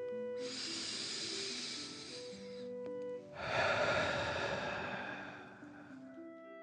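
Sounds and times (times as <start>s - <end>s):
forceful hissing exhale through the mouth: 0.4s - 2.7s, 3.4s - 6.0s
deep breathing in a breathing exercise: 0.4s - 6.2s.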